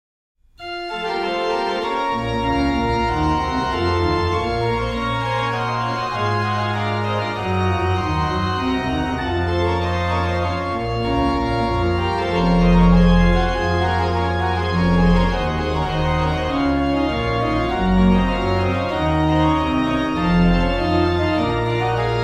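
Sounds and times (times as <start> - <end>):
organ piece: 0.6 - 22.2.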